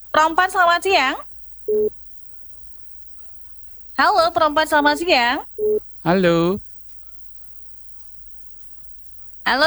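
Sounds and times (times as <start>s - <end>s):
speech: 0.2s - 2.0s, 4.0s - 6.7s, 9.5s - 9.6s
low telephone line hum: 1.7s - 1.9s
telephone busy tone on dropped call to radio phone-in: 1.7s - 1.9s, 5.6s - 5.8s.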